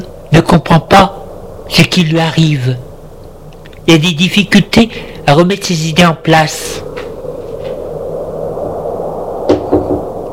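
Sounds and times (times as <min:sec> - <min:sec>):
low steady hum: 0:00.0 - 0:10.3
speech: 0:00.3 - 0:02.9, 0:03.9 - 0:06.9
knocking on a door: 0:09.5 - 0:10.0.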